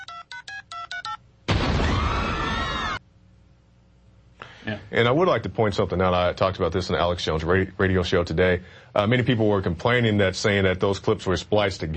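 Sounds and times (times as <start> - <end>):
cell phone keypad tones as a number is dialed: 0.0 - 1.2
loud sustained bomb explosion: 1.5 - 3.0
speech: 4.7 - 11.9.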